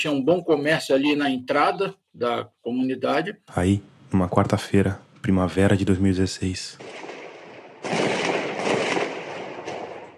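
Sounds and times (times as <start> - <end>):
speech: 0.0 - 7.1
dense overlapping gunfire during an armed invasion: 6.8 - 10.1.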